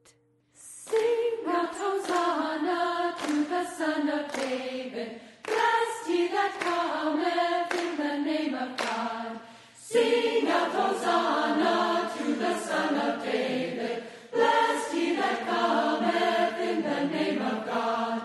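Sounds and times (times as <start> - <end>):
alto singing with choir: 0.6 - 18.2.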